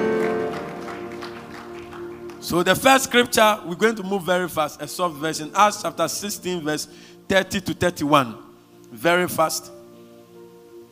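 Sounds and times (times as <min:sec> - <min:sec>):
audience clapping: 0:00.0 - 0:03.2
sustained humming musical tone: 0:00.0 - 0:10.9
speech: 0:02.5 - 0:09.8.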